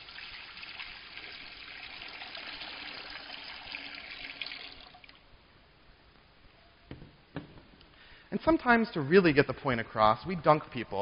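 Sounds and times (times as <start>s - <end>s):
water poured from a pitcher into a baptismal font: 0.0s - 5.2s
speech: 8.3s - 10.9s.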